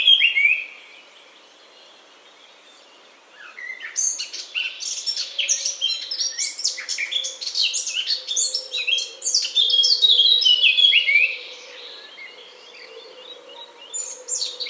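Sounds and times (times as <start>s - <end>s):
Eurasian blackcap Sylvia atricapilla singing a rich fast warble: 0.0s - 14.6s.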